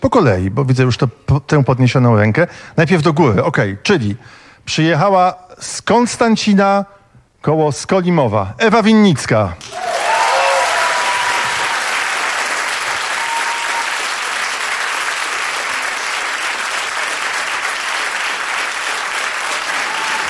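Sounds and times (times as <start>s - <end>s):
speech: 0.0s - 9.9s
audience applause at a live public event in Poland: 9.6s - 20.2s.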